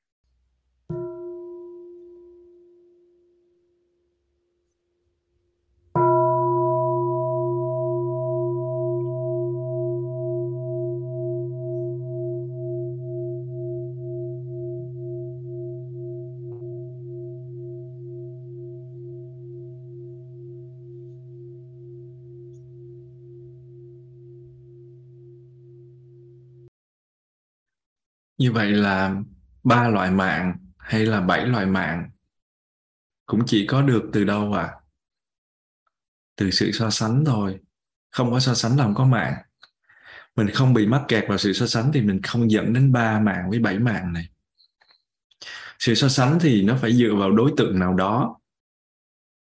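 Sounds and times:
Buddhist mindfulness bell invited by a nun, struck and resonating: 0.9s - 3.5s, 6.0s - 26.7s
speech: 28.4s - 32.2s, 33.3s - 34.8s, 36.4s - 39.5s, 40.4s - 44.3s, 45.4s - 48.4s.

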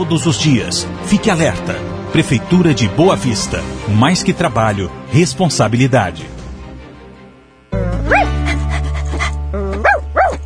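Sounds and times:
speech: 0.0s - 6.4s
musical backing: 0.0s - 10.4s
small dog yapping: 8.1s - 8.4s, 9.7s - 10.4s.

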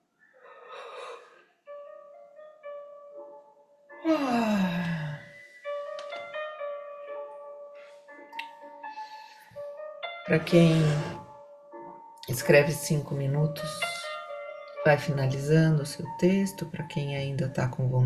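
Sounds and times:
soft sustained music: 0.0s - 18.0s
deep breath in and out with a long audible sigh: 0.4s - 1.5s, 4.2s - 5.6s, 8.9s - 9.6s, 10.6s - 11.3s
speech: 10.3s - 11.2s, 12.3s - 13.9s, 14.8s - 18.0s.

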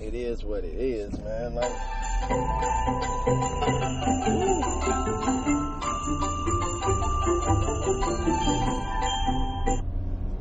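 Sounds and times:
low engine rumble: 0.0s - 10.4s
speech: 0.3s - 9.8s
electronic phone alarm tone chirping: 1.6s - 9.8s.

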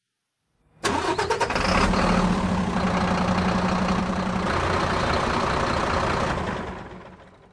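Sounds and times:
truck engine cranking and idling: 0.9s - 7.5s.

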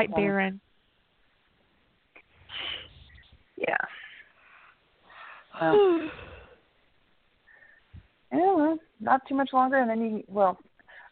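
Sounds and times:
speech: 0.0s - 0.7s, 3.6s - 4.0s, 5.6s - 6.3s, 8.3s - 11.0s
person yawning: 5.6s - 6.6s.

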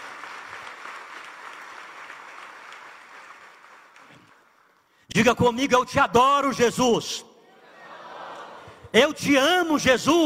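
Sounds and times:
crowd applauding: 0.0s - 4.9s
speech: 5.2s - 7.3s, 9.0s - 10.2s
laughter: 7.5s - 8.9s.

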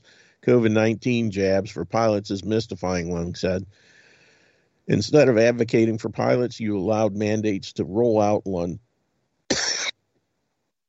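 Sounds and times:
speech: 0.4s - 3.9s, 4.9s - 8.9s
person coughing from a dry throat: 9.5s - 10.0s.

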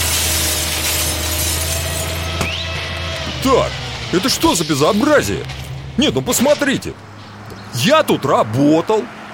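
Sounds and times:
excavator headlight glass smashing: 0.0s - 7.0s
loud steady engine rumble: 0.0s - 9.3s
speech: 3.4s - 7.1s, 7.7s - 9.2s.

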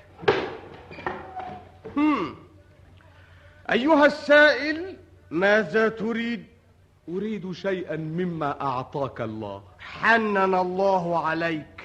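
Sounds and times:
door creaking as it swings: 0.2s - 2.2s
speech: 2.0s - 2.4s, 3.7s - 6.5s, 7.1s - 11.8s.

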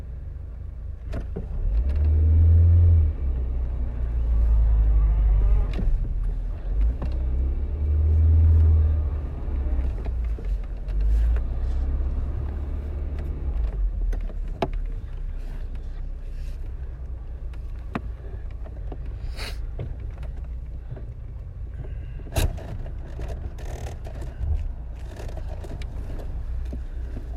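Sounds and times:
car engine rumbling while maneuvering into a parking spot: 0.0s - 27.3s.

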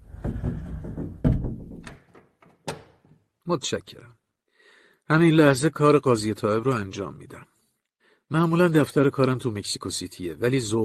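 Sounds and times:
wooden closet door being shut and locked: 0.0s - 3.2s
speech: 3.5s - 4.2s, 5.1s - 7.5s, 8.3s - 10.8s.

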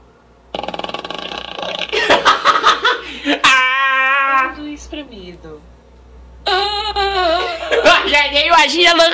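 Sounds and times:
buzzy rattling fart sound imitated by a voice: 0.5s - 2.2s
loud laughter: 1.9s - 4.3s, 6.5s - 8.2s
noisy breaths: 2.9s - 3.4s
speech: 6.5s - 9.1s.

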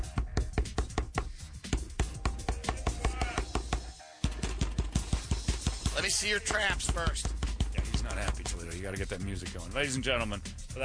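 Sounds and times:
pounding on a door: 0.1s - 8.6s
speech: 6.0s - 7.4s, 8.2s - 10.8s.

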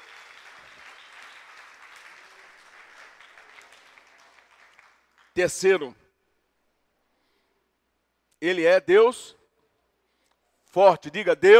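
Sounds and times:
crowd applauding: 0.0s - 5.4s
speech: 5.4s - 6.0s, 8.4s - 9.4s, 10.8s - 11.5s.

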